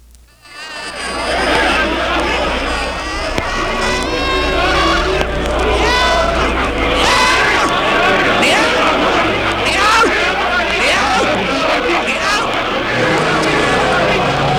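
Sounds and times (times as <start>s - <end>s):
screaming played in reverse from a stereo track: 0.4s - 14.5s
laughter: 0.5s - 14.5s.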